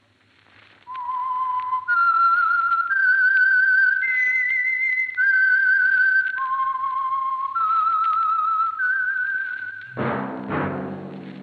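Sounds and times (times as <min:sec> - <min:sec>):
whistled signature theme melody of a radio mystery program: 0:00.9 - 0:10.0
brief burst of orchestral music: 0:10.0 - 0:11.4.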